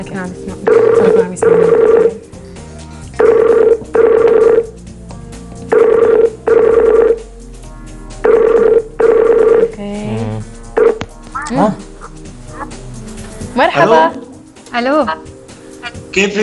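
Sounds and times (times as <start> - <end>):
speech: 0.0 - 2.3, 13.8 - 14.2, 14.8 - 15.3, 16.2 - 16.4
ringback tone of an outgoing telephone call: 0.7 - 2.2, 3.2 - 4.8, 5.7 - 7.2, 8.2 - 9.7, 10.8 - 11.0.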